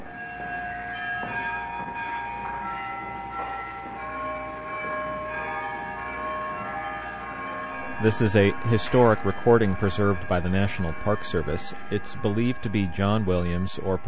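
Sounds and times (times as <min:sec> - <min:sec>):
church carillon bells playing a slow melody in Sitka: 0:00.0 - 0:14.0
hiss: 0:07.8 - 0:14.0
speech: 0:08.0 - 0:14.0.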